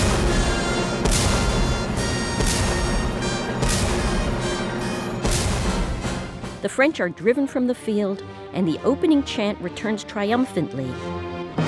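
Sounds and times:
booming cannon shots: 0.0 - 6.7
dense sustained orchestral backdrop: 0.0 - 9.6
speech: 6.6 - 11.3.

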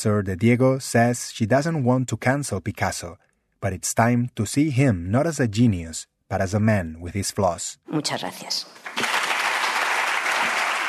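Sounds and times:
speech: 0.0 - 9.0
audience applauding after a speech: 8.8 - 10.8.

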